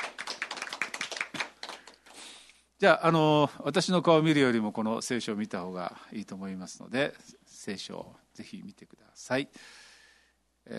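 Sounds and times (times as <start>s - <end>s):
church congregation clapping after a prayer: 0.0s - 2.2s
speech: 2.8s - 9.8s.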